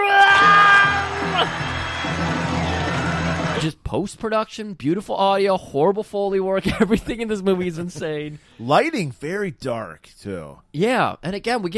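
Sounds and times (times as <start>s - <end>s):
strange drawn-out screams of several voices in a movie shootout scene: 0.0s - 3.6s
speech: 3.6s - 11.7s.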